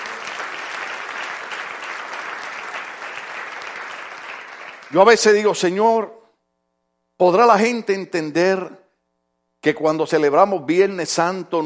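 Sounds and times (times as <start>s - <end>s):
congregation applauding: 0.0s - 5.8s
speech: 4.9s - 6.2s, 7.2s - 8.8s, 9.6s - 11.6s.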